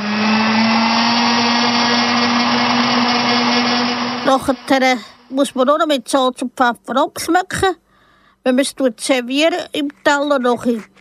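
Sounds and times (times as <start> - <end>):
handheld immersion blender puréeing soup: 0.0 - 5.4
speech: 4.3 - 7.8, 8.4 - 10.9.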